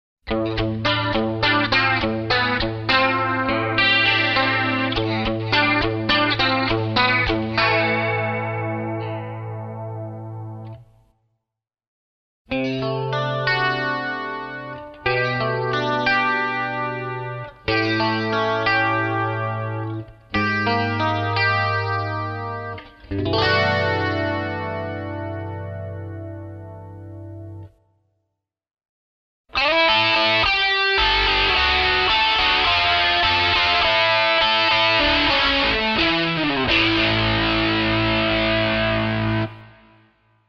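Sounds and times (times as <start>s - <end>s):
super chorus effect: 0.3s - 11.2s, 12.5s - 28.1s, 29.5s - 40.4s.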